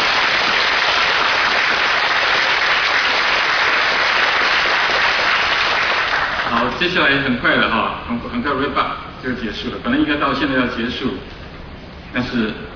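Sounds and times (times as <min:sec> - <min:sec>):
congregation applause in a church: 0:00.0 - 0:06.8
speech: 0:06.8 - 0:11.4, 0:12.1 - 0:12.7.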